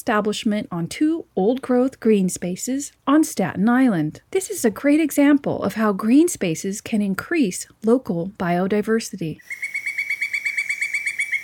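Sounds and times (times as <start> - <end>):
speech: 0.0 - 9.8
pileated woodpecker calling in ringing notes: 9.4 - 11.4.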